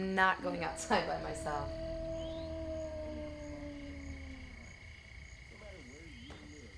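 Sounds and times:
speech: 0.0 - 1.8
warbling cry: 0.0 - 5.2
wolf-like howl: 0.0 - 5.2
low noisy background: 0.0 - 6.7.

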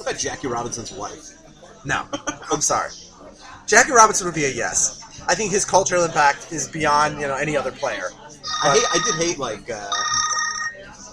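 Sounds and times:
murmur of voices: 0.0 - 11.1
speech: 0.1 - 10.3
telephone ringing: 8.4 - 10.9.

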